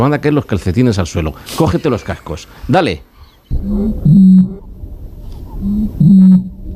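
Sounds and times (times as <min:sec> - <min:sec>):
speech: 0:00.0 - 0:04.6, 0:05.6 - 0:06.5
deep booming call of Spain's bird of the year 2024: 0:03.4 - 0:06.7.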